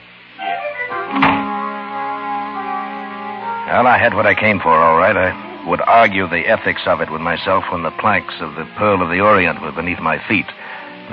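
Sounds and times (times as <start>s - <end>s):
steady humming tone: 0.0s - 11.1s
door thudding shut: 1.1s - 1.5s
speech: 3.7s - 11.1s.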